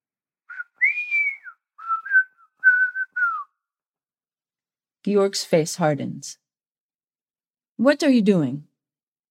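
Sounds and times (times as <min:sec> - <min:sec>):
person whistling a tune while slicing carpaccio: 0:00.5 - 0:03.6
speech: 0:05.0 - 0:06.4, 0:07.8 - 0:08.7.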